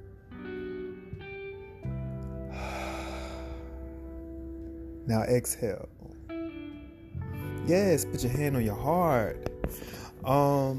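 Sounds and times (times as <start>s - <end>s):
soft sustained musical tones: 0.0s - 10.7s
deep inhale: 2.5s - 4.0s
speech: 5.1s - 6.2s, 7.7s - 10.7s.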